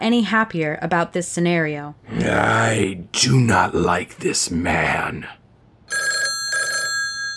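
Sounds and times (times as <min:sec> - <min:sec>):
speech: 0:00.0 - 0:06.1
desk telephone bell ringing: 0:05.9 - 0:07.3.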